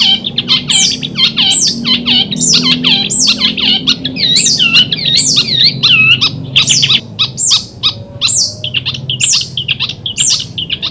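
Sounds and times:
Long-tailed shrike song at a simulated songbird contest: 0:00.0 - 0:10.9.

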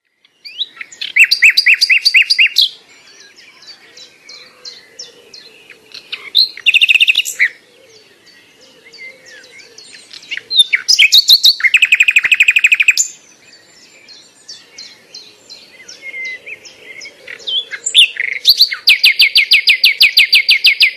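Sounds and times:
nightingale singing: 0:00.0 - 0:20.9.

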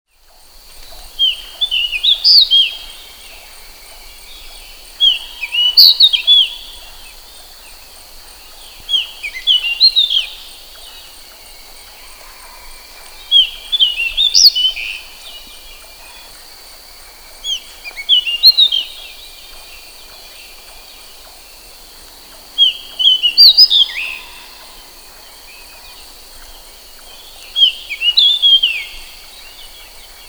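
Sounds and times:
magpie robin chirping: 0:00.2 - 0:30.2.

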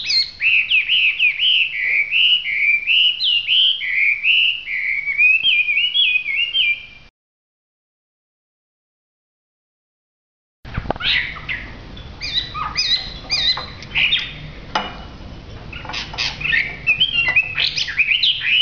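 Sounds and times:
hwamei song in full song: 0:00.0 - 0:07.1, 0:11.0 - 0:14.5, 0:15.7 - 0:18.6.

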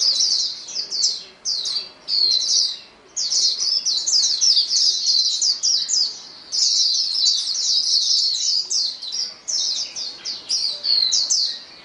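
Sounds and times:
many white-eyes chirping and trilling in a chorus: 0:00.0 - 0:11.8.

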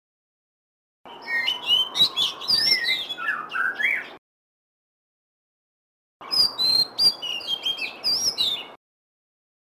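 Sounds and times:
black Cebu form magpie-robin song of whistles, chirps and buzzy notes: 0:01.1 - 0:04.2, 0:06.2 - 0:08.8.

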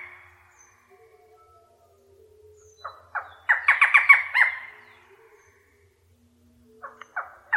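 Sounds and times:
barred forest falcon giving harsh squawking calls: 0:02.6 - 0:05.7, 0:06.8 - 0:07.5.

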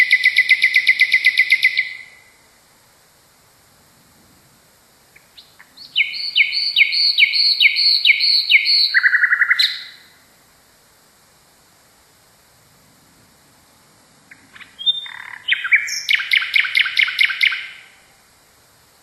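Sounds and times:
common nightingale song: 0:00.0 - 0:03.4, 0:04.9 - 0:11.6, 0:14.2 - 0:19.0
speech: 0:07.0 - 0:09.4.

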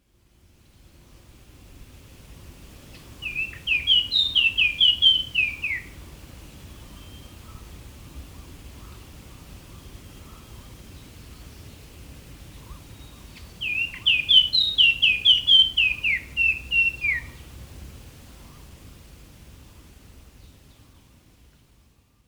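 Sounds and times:
flycatcher calling: 0:03.0 - 0:06.0, 0:12.6 - 0:17.5.

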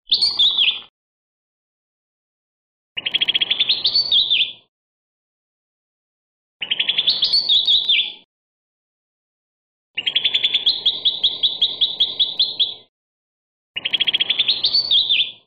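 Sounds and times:
cucak kelabu bird singing: 0:00.1 - 0:00.9, 0:03.0 - 0:04.7, 0:06.6 - 0:08.3, 0:10.0 - 0:12.9, 0:13.8 - 0:15.4.

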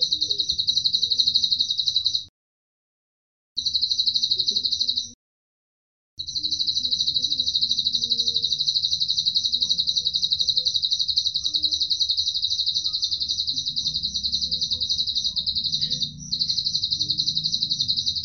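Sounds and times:
Atlantic canary song of rapid trills, Cililin-style: 0:00.0 - 0:02.3, 0:03.6 - 0:05.2, 0:06.2 - 0:18.2
faint low hum: 0:06.4 - 0:18.2.

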